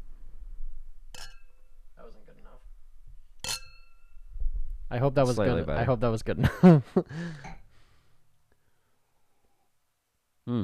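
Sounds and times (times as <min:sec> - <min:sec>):
cognac glasses clinking in a toast: 0:01.1 - 0:01.8, 0:03.4 - 0:04.3
speech: 0:04.9 - 0:07.5.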